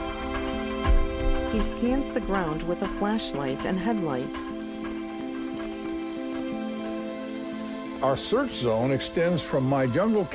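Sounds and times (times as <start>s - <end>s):
rain pattering in a jungle at night: 0.0s - 10.3s
speech: 1.5s - 4.6s, 8.0s - 10.3s.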